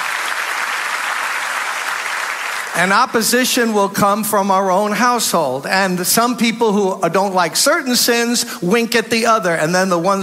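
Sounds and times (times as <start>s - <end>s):
congregation clapping at a church service: 0.0s - 3.3s
speech: 2.8s - 10.2s.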